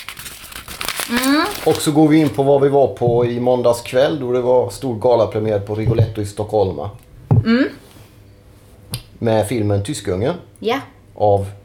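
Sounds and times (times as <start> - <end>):
paper pages being turned: 0.0 - 2.4
speech: 1.1 - 7.8, 9.2 - 11.6.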